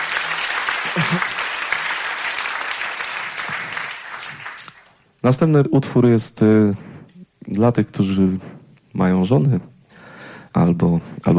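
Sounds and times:
audience applause at a concert: 0:00.0 - 0:04.9
speech: 0:00.9 - 0:01.3, 0:05.2 - 0:06.9, 0:07.5 - 0:09.7, 0:10.6 - 0:11.3.

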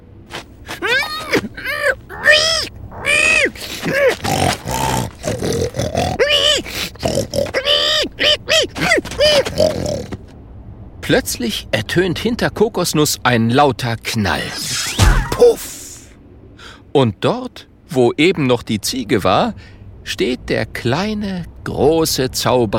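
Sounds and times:
person imitating a pig squealing and grunting: 0:00.7 - 0:10.2, 0:14.5 - 0:16.0
speech: 0:11.1 - 0:14.7, 0:17.0 - 0:22.7.

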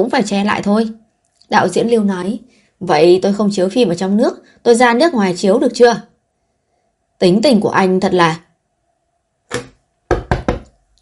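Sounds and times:
speech: 0:00.0 - 0:06.1, 0:07.2 - 0:08.4, 0:09.5 - 0:09.7
knocking on a door: 0:09.5 - 0:10.7.

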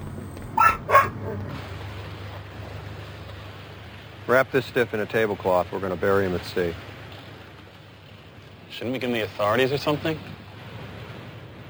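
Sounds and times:
steady low rumble: 0:00.0 - 0:04.3
dog barking: 0:00.5 - 0:01.6
speech: 0:04.3 - 0:06.9, 0:08.8 - 0:10.4.

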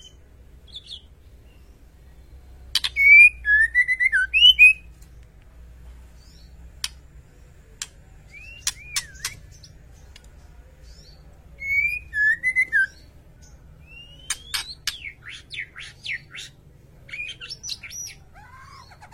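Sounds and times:
White-rumped shama whistling song: 0:02.7 - 0:04.9, 0:08.3 - 0:09.7, 0:11.0 - 0:13.1, 0:13.8 - 0:19.1
White-rumped shama sharp clicks: 0:02.8 - 0:03.2, 0:06.8 - 0:07.1, 0:07.8 - 0:10.4, 0:14.0 - 0:15.2.

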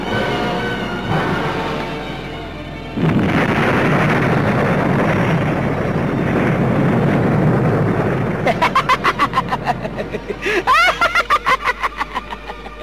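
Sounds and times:
loud explosion effects of two magical powers colliding: 0:00.1 - 0:10.3
laughter: 0:08.5 - 0:12.8.

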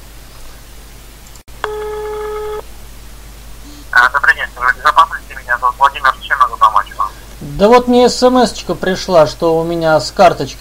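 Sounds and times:
phone line click: 0:01.6 - 0:02.6
speech: 0:04.1 - 0:06.7, 0:07.4 - 0:10.6.

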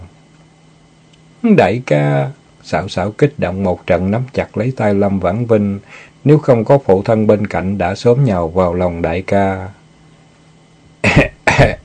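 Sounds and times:
speech: 0:01.4 - 0:09.8, 0:11.0 - 0:11.8
old man fake coughing: 0:11.0 - 0:11.8.

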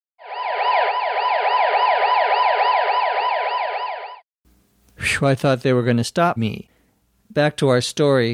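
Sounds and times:
police car siren wailing: 0:00.2 - 0:04.2
speech: 0:05.1 - 0:06.7, 0:07.3 - 0:08.3.

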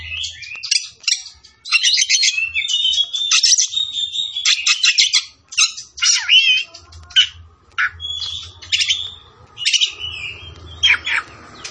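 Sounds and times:
Oriental magpie-robin singing vigorously: 0:00.0 - 0:11.6
soft low background hum: 0:05.4 - 0:11.6.

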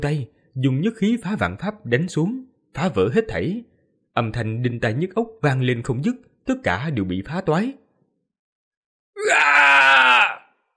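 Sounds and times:
speech: 0:00.0 - 0:07.8, 0:09.2 - 0:09.5
man screaming loudly in a frenzy: 0:09.2 - 0:10.5.

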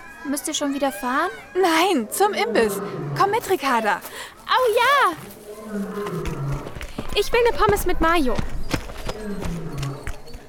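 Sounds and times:
speech: 0:00.2 - 0:06.4, 0:07.2 - 0:08.5, 0:09.2 - 0:09.6
footsteps of three people running to a snack bar: 0:03.3 - 0:10.4.

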